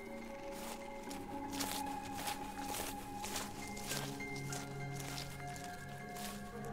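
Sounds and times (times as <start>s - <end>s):
light footsteps crunching over dry leaves: 0.0s - 6.7s.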